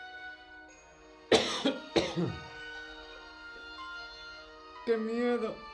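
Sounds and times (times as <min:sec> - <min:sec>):
person coughing: 0:01.3 - 0:02.5
speech: 0:04.9 - 0:05.7.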